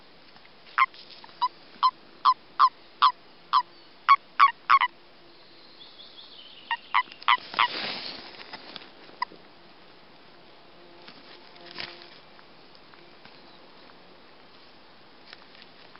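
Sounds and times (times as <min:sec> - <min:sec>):
burst of rustling noise: 0:00.2 - 0:01.9, 0:07.2 - 0:09.5, 0:10.9 - 0:15.9
common toad mating calls during breeding: 0:00.8 - 0:04.9, 0:06.7 - 0:07.7.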